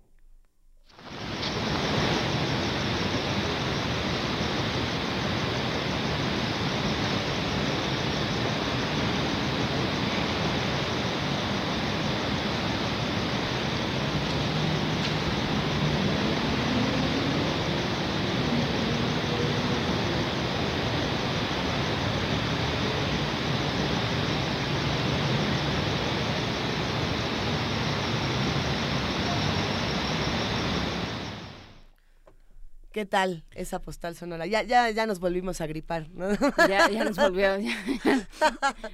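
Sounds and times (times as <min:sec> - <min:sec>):
steady dense rain hissing: 0:00.9 - 0:32.0
crickets chirping faintly: 0:00.9 - 0:32.2, 0:33.6 - 0:38.9
speech: 0:33.0 - 0:38.9
laughter: 0:36.2 - 0:38.9.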